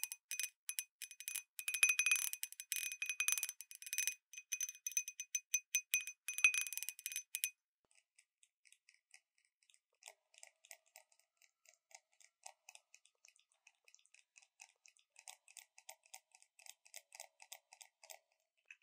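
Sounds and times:
glass wind-bell cup chiming from taps: 0.0s - 7.5s.

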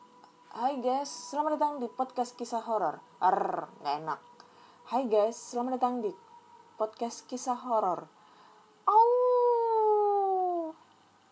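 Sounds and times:
speech: 0.6s - 4.3s, 4.9s - 6.2s, 6.8s - 8.2s
person imitating a wolf howl: 8.9s - 10.8s.

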